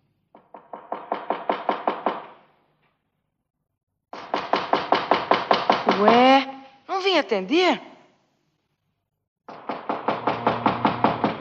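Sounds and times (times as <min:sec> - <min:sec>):
rapid knocking on a chocolate candy house door: 0:00.3 - 0:02.4, 0:04.1 - 0:06.1, 0:09.5 - 0:11.3
speech: 0:06.0 - 0:06.5, 0:07.2 - 0:07.9.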